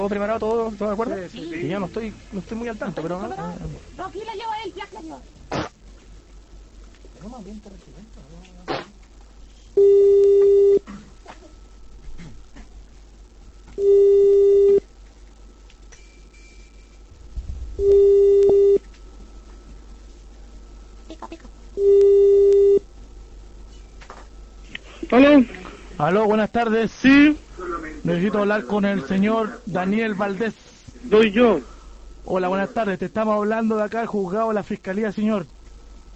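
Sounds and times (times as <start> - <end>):
speech: 0.0 - 5.6, 7.2 - 8.9, 13.8 - 14.5, 25.3 - 35.5
low hiss: 0.0 - 36.1
telephone ringback tone: 9.8 - 10.8, 13.8 - 14.8, 17.8 - 18.8, 21.8 - 22.8.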